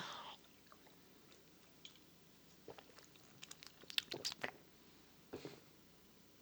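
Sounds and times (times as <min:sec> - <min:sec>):
person gulping a Diet Pepsi: 0:02.6 - 0:04.6
wet slurps and mouth clicks: 0:02.7 - 0:04.6.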